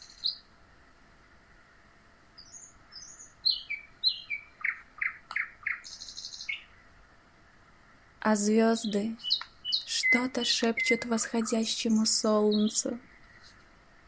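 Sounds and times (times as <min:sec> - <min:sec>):
small bird singing: 0:00.0 - 0:00.5, 0:02.3 - 0:07.0, 0:08.3 - 0:14.0
speech: 0:08.3 - 0:09.3, 0:10.1 - 0:13.1.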